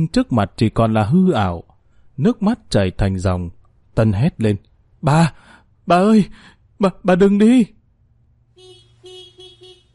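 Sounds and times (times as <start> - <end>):
speech: 0.0 - 7.8
low traffic rumble: 0.0 - 9.9
car horn honking outside on the street: 8.5 - 9.9.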